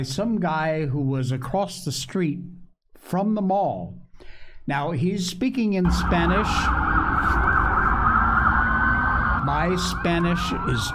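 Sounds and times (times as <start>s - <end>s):
speech: 0.0s - 4.0s, 4.7s - 7.4s, 9.5s - 10.9s
heavy low rumble of traffic or engine noise: 5.9s - 10.9s
police car sirens wailing: 5.9s - 10.9s.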